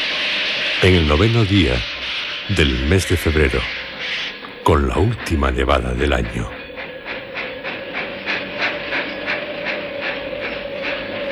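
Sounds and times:
train arriving at a railway station on a snowy February day: 0.0s - 11.3s
speech: 0.8s - 1.9s, 2.5s - 3.8s, 4.7s - 6.6s
sustained tone: 0.8s - 3.8s, 4.5s - 6.6s.

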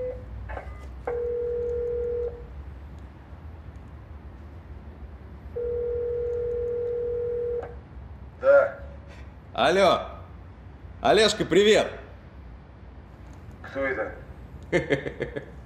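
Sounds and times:
telephone dialing beeps to connect a call: 0.0s - 2.4s, 5.6s - 7.6s
long steady mid-pitched telephone tones: 0.0s - 2.6s, 5.5s - 7.8s
speech: 9.6s - 10.1s, 11.0s - 12.0s, 13.7s - 15.6s
laughter: 14.7s - 15.6s.

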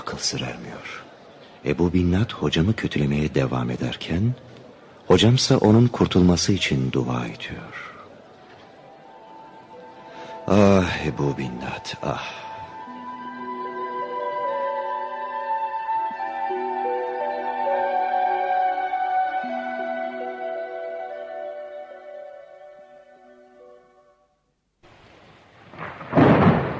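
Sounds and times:
speech: 0.2s - 4.5s, 5.1s - 7.9s, 10.5s - 12.5s
sustained tonal music: 5.2s - 24.4s
heavy rain downpour: 24.8s - 26.7s.

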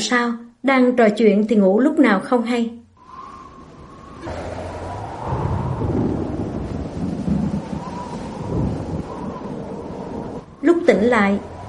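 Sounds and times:
speech: 0.0s - 2.8s, 10.9s - 11.5s
steady wash of storm noise: 2.9s - 11.6s
loud rolling thunder during a heavy storm after dark: 3.0s - 11.6s.

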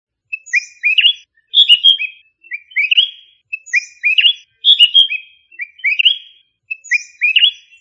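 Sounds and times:
bird singing high chirps in Indonesia: 0.2s - 7.7s.

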